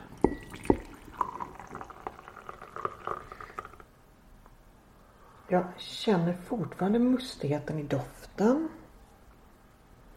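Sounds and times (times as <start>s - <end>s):
teapot spout or cup clinking: 0.0s - 3.8s
tea pouring from a pot into a cup: 0.0s - 3.9s
speech: 5.5s - 8.8s.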